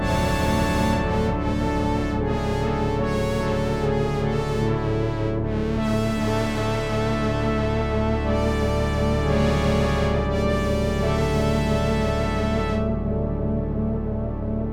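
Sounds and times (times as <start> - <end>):
drone: 0.0 - 14.7.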